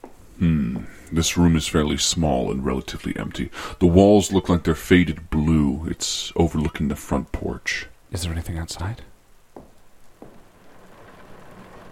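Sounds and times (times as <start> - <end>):
speech: 0.4 - 9.1
rain falling outside: 9.8 - 11.9.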